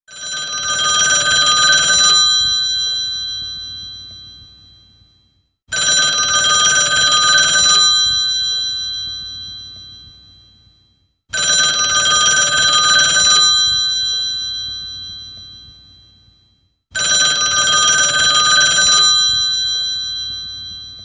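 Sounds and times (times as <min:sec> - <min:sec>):
old telephone ringing: 0:00.1 - 0:02.9, 0:05.7 - 0:08.0, 0:11.4 - 0:14.3, 0:17.0 - 0:21.0.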